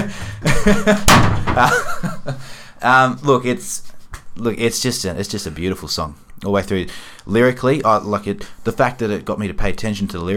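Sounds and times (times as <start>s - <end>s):
people chuckling: 0.0s - 2.5s
speech: 0.6s - 2.0s, 2.8s - 10.3s
door slamming: 0.9s - 2.0s.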